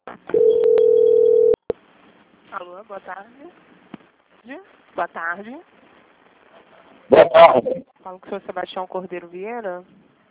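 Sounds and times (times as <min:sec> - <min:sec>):
telephone call transfer tone on a bank phone line: 0:00.3 - 0:01.7
speech: 0:02.6 - 0:03.7, 0:04.4 - 0:05.8, 0:07.1 - 0:10.0.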